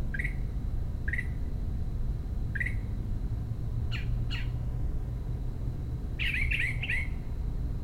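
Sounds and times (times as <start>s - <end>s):
constant low rumble: 0.0s - 7.8s
Northern mockingbird repeating rasping chack calls, protesting a commotion: 0.1s - 0.4s, 2.5s - 2.9s, 3.9s - 4.6s, 6.2s - 7.2s.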